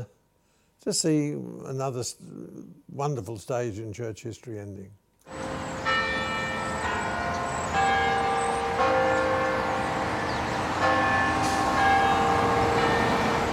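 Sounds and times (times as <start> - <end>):
speech: 0.8 - 5.0
church bells tolling for mourning: 5.3 - 13.5.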